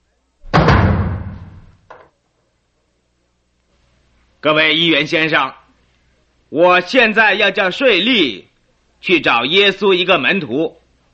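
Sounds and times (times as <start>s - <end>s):
heavy door slamming in a council chamber: 0.4s - 1.9s
speech: 4.4s - 5.6s, 6.5s - 11.1s.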